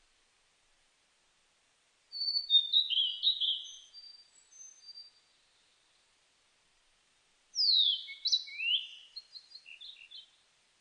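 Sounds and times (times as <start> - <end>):
blue-and-white flycatcher singing clear slurred whistles: 2.2 - 5.2, 7.6 - 10.2.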